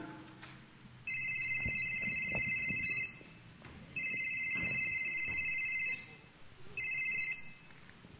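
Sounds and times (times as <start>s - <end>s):
cellphone ringing with incoming call: 1.1s - 3.4s, 4.0s - 6.2s, 6.8s - 7.7s.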